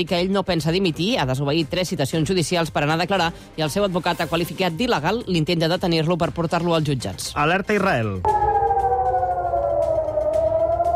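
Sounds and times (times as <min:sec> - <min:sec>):
speech: 0:00.0 - 0:08.5
air raid siren wailing in Jerusalem Israel warning of missile attack: 0:08.2 - 0:10.9.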